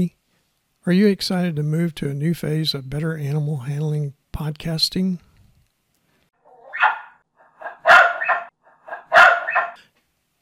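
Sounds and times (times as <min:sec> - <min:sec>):
speech: 0:00.8 - 0:05.3
female Australian cattle dog barking: 0:06.5 - 0:09.8.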